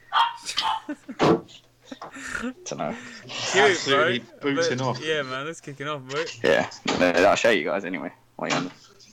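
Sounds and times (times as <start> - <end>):
chihuahua and schnauzer-like dog barking and yipping: 0.1 - 1.0
speech: 2.4 - 8.8.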